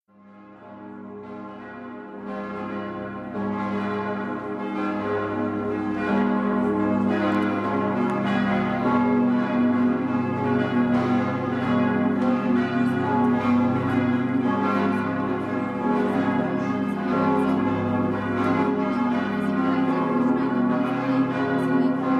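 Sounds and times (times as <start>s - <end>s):
bells ringing in Andechs: 0.6s - 22.1s.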